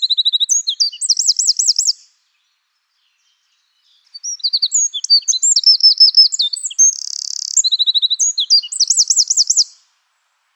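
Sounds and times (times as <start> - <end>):
Eurasian wren singing, Troglodytes troglodytes: 0.0 - 2.1, 3.9 - 9.9.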